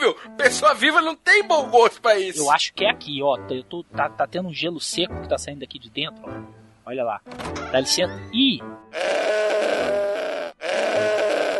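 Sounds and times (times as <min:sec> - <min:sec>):
speech: 0:00.1 - 0:10.0
goat bleating inside a room: 0:09.0 - 0:11.5.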